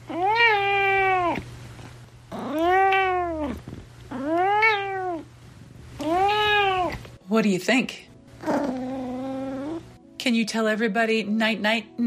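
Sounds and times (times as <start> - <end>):
low steady hum: 0.0 - 12.0
cat meowing in long rising-and-falling cries: 0.1 - 1.4, 2.3 - 5.3, 6.0 - 7.0
speech: 7.4 - 8.0, 10.3 - 12.0.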